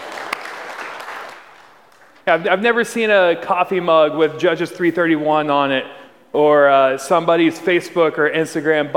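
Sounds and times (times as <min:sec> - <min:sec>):
crowd applauding: 0:00.0 - 0:02.2
speech: 0:02.3 - 0:08.9.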